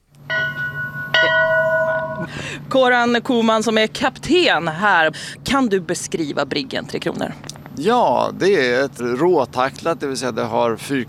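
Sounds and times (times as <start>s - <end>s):
ship's bell rung aboard a 35-metre square-rigged brig to wake the crew: 0.2s - 2.5s
speech: 2.3s - 11.0s.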